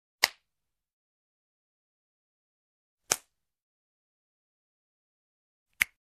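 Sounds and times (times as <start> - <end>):
finger snap: 0.2 - 0.4, 3.0 - 3.3, 5.7 - 6.0
slap on a human body: 3.1 - 3.3.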